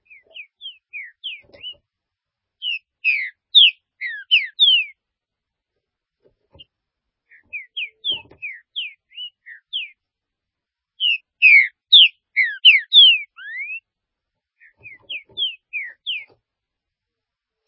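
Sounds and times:
green-winged saltator singing bright whistled phrases: 0:02.6 - 0:05.0, 0:07.4 - 0:10.0, 0:11.0 - 0:13.8, 0:14.8 - 0:16.3.

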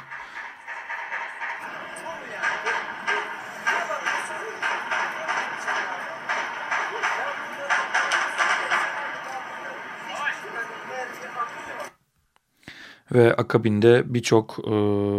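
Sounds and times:
gunshots at a courthouse: 0:00.0 - 0:11.9
steady noisy outdoor background: 0:00.0 - 0:12.0
speech: 0:13.1 - 0:15.1.

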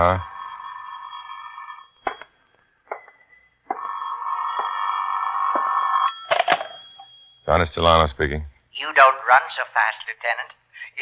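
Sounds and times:
speech: 0:00.0 - 0:00.3, 0:07.5 - 0:11.0
telephone ringing in electronic bursts: 0:00.0 - 0:07.4.

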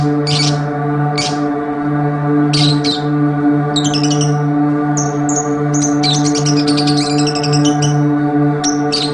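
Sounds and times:
oriental magpie-robin singing: 0:00.0 - 0:01.4, 0:02.5 - 0:03.1, 0:03.8 - 0:04.4, 0:05.0 - 0:09.1
steady background hum: 0:00.0 - 0:09.1.

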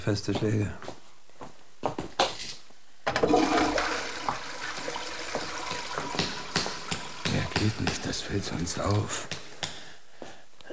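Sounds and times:
speech: 0:00.0 - 0:01.0, 0:07.6 - 0:09.4
toilet flush washing rubble down in a prison cell: 0:03.1 - 0:09.6.

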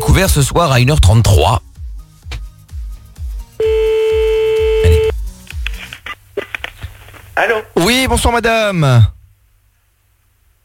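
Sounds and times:
speech: 0:00.2 - 0:01.7, 0:07.4 - 0:09.1
pulsing low bass beat: 0:03.6 - 0:05.1
steady held telephone tone: 0:03.6 - 0:05.1.

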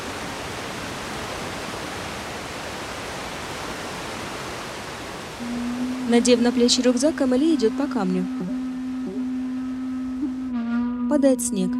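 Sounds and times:
waterfall pouring between two large boulders on a slope: 0:00.0 - 0:10.2
speech: 0:05.4 - 0:08.6, 0:11.2 - 0:11.7.

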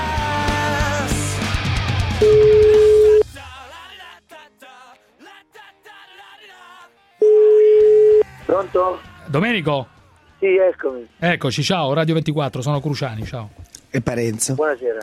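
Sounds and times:
music: 0:00.0 - 0:15.0
speech: 0:02.2 - 0:02.4, 0:08.9 - 0:15.0
telephone line tone while placing a call: 0:02.2 - 0:03.2, 0:07.2 - 0:08.2.

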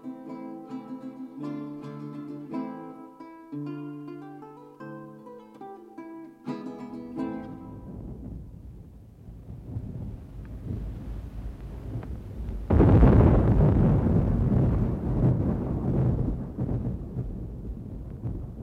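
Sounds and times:
thunder during a storm at sea: 0:07.2 - 0:18.6.

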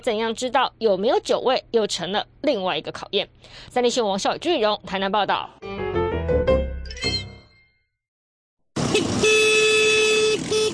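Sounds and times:
speech: 0:00.0 - 0:05.8
police vehicle horn blaring at night on a beach: 0:08.8 - 0:10.7.

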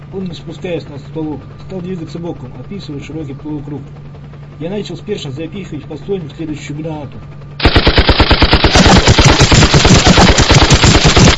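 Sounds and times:
speech: 0:00.1 - 0:07.4
heavy-calibre machine gun burst: 0:07.6 - 0:11.3.

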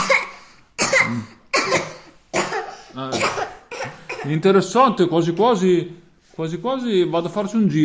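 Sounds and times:
storyteller imitating a wolf coughing: 0:00.0 - 0:04.4
speech: 0:04.2 - 0:07.8.

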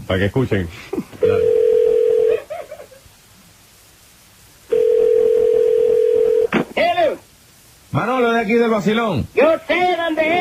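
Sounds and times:
speech: 0:00.1 - 0:01.4, 0:08.0 - 0:10.4
telephone line tone of a call being dialed: 0:01.2 - 0:02.4, 0:04.7 - 0:06.5.

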